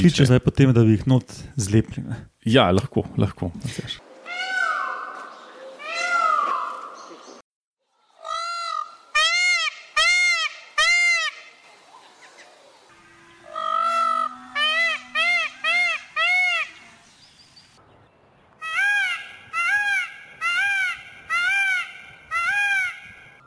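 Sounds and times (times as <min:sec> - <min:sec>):
speech: 0:00.0 - 0:04.0
peacock calls: 0:04.0 - 0:07.4, 0:08.2 - 0:17.6, 0:18.6 - 0:23.4.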